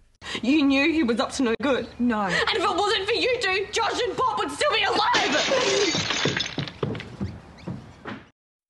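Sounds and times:
speech: 0.4 - 6.5
casserole dish smashing on carpet: 5.2 - 7.1
scattered thuds and clatters of broken casserole dish: 5.2 - 8.3.

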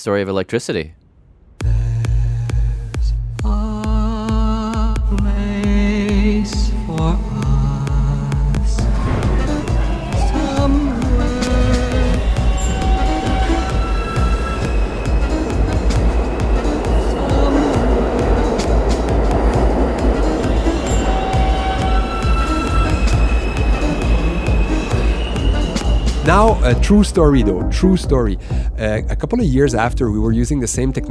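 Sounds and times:
speech: 0.0 - 1.0, 6.4 - 7.3, 26.3 - 31.0
electric train running with a steady rumbling hum: 1.2 - 31.0
electric train traction motor inverter whine: 5.7 - 28.0.

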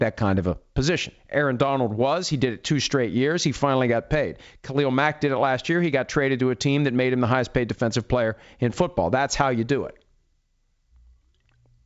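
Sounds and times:
speech: 0.0 - 10.0
sipping water: 11.0 - 11.8
wet mouth clicks: 11.0 - 11.8.

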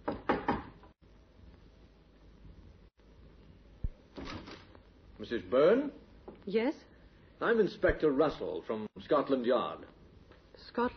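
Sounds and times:
firm knocks on a wooden door: 0.0 - 0.8
speech: 5.2 - 10.0, 10.6 - 10.9.

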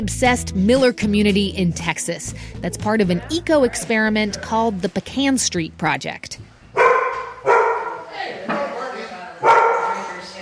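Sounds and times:
speech: 0.0 - 6.5
dog barking: 6.7 - 8.1, 9.4 - 10.2.

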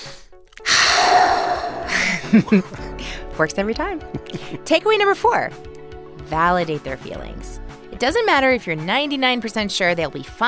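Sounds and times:
deep belly breath drawn in and exhaled: 0.0 - 2.3
speech: 2.3 - 2.8, 3.4 - 10.4.

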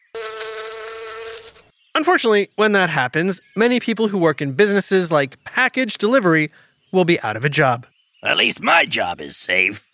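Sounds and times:
insect buzzing: 0.0 - 1.7
speech: 2.0 - 9.9.

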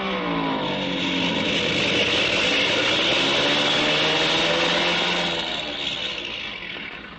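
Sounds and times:
airplane engine roaring as the plane comes in, acting up: 0.0 - 7.1.

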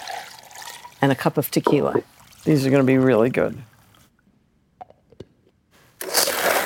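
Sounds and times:
speech: 1.0 - 3.7
soft knocks and clunks: 1.7 - 2.1.

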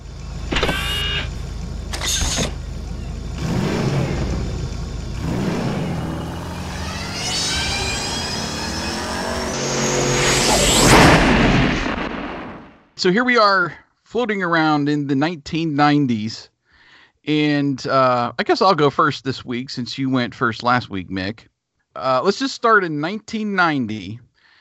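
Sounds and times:
steady hum: 0.0 - 12.6
time machine sound effect with whirring electronic whines and whooshes: 0.0 - 12.7
speech: 13.0 - 16.5, 17.2 - 24.2.

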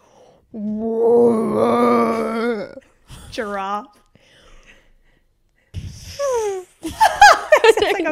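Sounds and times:
speech: 0.5 - 0.9, 3.4 - 4.0, 7.8 - 8.0
person imitating a whale call with a moaning groan: 0.5 - 2.8.

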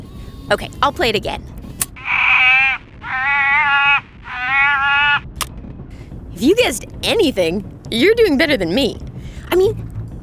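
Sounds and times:
speech: 0.5 - 1.5, 6.4 - 9.8
harbor seal giving nasal sheep-like wails: 2.0 - 5.2.

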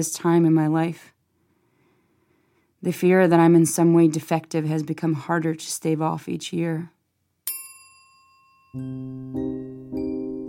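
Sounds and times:
speech: 0.0 - 1.1, 2.8 - 7.0, 8.7 - 9.8
bell ringing with a bright lingering tone: 7.5 - 10.4.

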